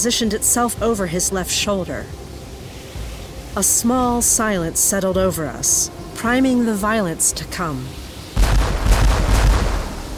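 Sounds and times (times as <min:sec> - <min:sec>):
speech: 0:00.0 - 0:02.3, 0:03.6 - 0:08.0
revolver gunshots: 0:08.4 - 0:10.1.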